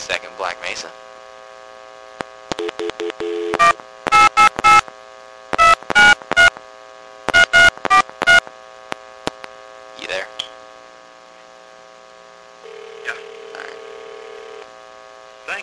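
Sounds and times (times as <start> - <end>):
speech: 0.1 - 1.0
steady telephone line hum: 1.1 - 9.9, 12.1 - 15.6
touch-tone beeps of a telephone number being dialed: 2.6 - 4.8, 5.6 - 6.5, 7.3 - 8.4.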